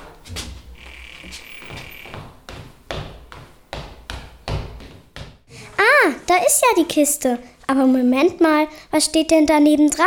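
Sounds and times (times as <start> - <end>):
footsteps descending cellar stairs: 0.0 - 5.5
cellar door creaking open: 0.2 - 2.4
speech: 6.4 - 10.0.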